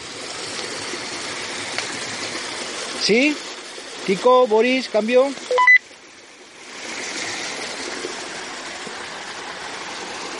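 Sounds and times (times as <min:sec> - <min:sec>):
water cascading down steps into a river: 0:00.0 - 0:10.3
speech: 0:03.0 - 0:05.4.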